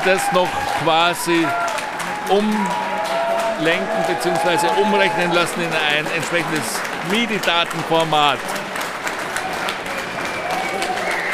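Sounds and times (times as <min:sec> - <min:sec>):
speech: 0:00.0 - 0:01.6, 0:02.3 - 0:02.9, 0:03.6 - 0:08.6
audience applause at a maker fair: 0:00.0 - 0:11.3.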